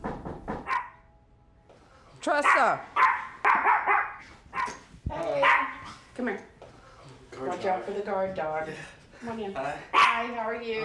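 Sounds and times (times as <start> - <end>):
guard dog barking at the front door of a suburban house: 0.6 - 1.0, 2.4 - 5.9, 9.9 - 10.4
speech: 2.2 - 3.0, 7.4 - 10.8.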